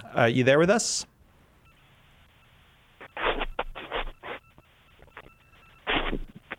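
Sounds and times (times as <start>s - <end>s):
speech: 0.2s - 1.1s
faint steady phone line tones: 1.2s - 6.5s
harsh hissing fax machine noise bursts on a phone line: 1.7s - 6.5s.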